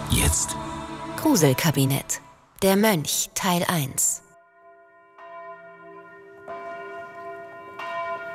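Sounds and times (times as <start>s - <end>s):
speech: 0.2s - 4.2s
monastery church bell ringing for evening mass: 4.3s - 8.3s.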